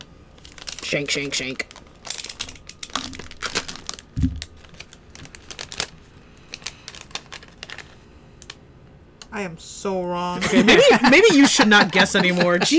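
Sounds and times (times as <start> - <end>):
thin plastic blind bag crinkling while cut open with a knife: 0.4 - 8.0
speech: 0.9 - 1.8, 9.4 - 12.7
laughter: 10.4 - 12.7.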